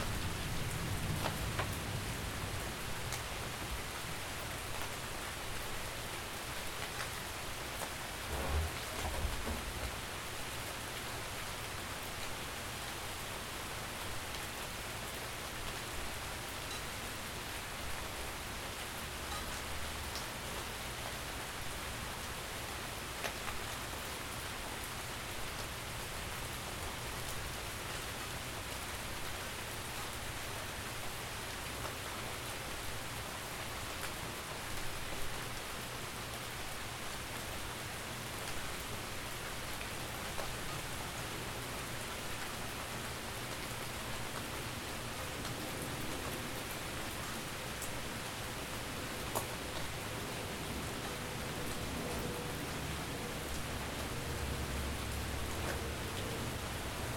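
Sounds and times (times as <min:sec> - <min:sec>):
rain: 0:00.0 - 0:57.1
thunderstorm: 0:08.1 - 0:10.1.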